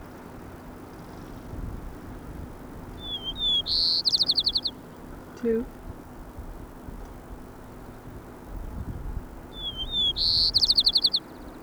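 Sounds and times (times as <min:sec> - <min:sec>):
low steady hiss: 0:00.0 - 0:11.6
white-crowned sparrow song: 0:01.0 - 0:05.8, 0:07.6 - 0:11.6
speech: 0:05.4 - 0:05.8.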